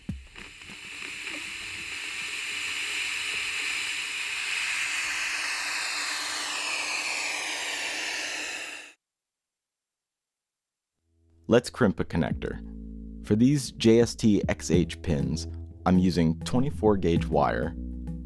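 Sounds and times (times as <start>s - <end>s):
white-noise hiss from a reverse-biased transistor circuit: 0.0s - 8.9s
speech: 11.5s - 12.7s, 13.3s - 17.8s.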